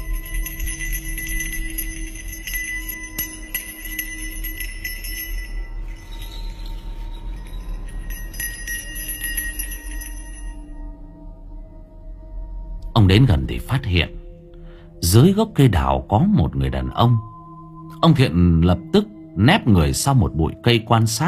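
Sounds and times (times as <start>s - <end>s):
small hand bell jingling beneath a peach tree at night: 0.0s - 11.0s
low steady background: 0.0s - 21.2s
speech: 13.1s - 14.2s, 15.1s - 17.3s, 18.0s - 21.2s.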